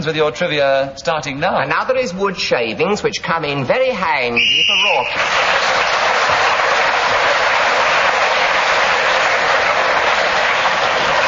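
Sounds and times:
speech: 0.0s - 6.4s
crowd applauding: 4.4s - 11.2s.

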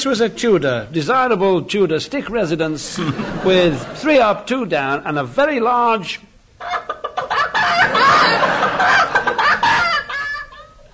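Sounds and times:
speech: 0.0s - 6.8s
laughter: 2.8s - 4.2s, 6.6s - 10.9s
chickens clucking and squawking: 6.6s - 10.8s.

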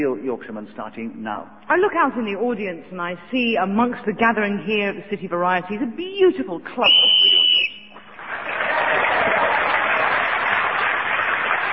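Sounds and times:
speech: 0.0s - 7.3s
short shrill whistle blast ending a timed turn in a panel game: 6.8s - 8.1s
audience loud sustained applause at a panel game: 8.1s - 11.7s.

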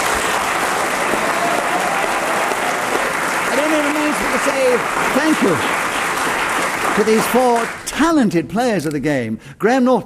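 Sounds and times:
cheers: 0.0s - 7.7s
audience applause: 0.0s - 7.9s
speech: 4.3s - 5.8s, 7.0s - 10.0s.

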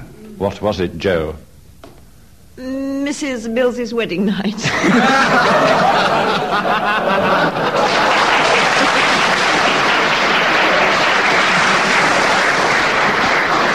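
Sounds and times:
speech: 0.4s - 1.5s, 2.6s - 8.1s
laughter: 4.2s - 9.3s
large audience applauding: 4.9s - 13.7s.

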